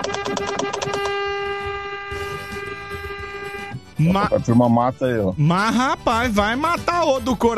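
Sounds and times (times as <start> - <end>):
train horn honking: 0.1 - 3.9
speech: 4.0 - 7.5.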